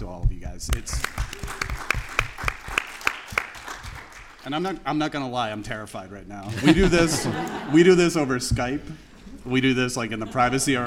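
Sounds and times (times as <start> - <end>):
speech: 0.0 - 2.0, 4.4 - 10.8
sharper louder claps in a regular beat: 0.7 - 4.7
crowd applauding in a room: 1.0 - 4.6
laughter: 6.5 - 10.8.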